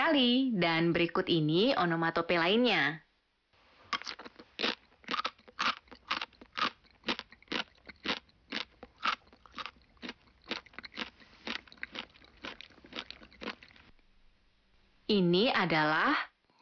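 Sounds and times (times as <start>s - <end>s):
speech: 0.1s - 3.0s, 15.1s - 16.5s
crunchy chewing of something hard: 3.9s - 14.0s.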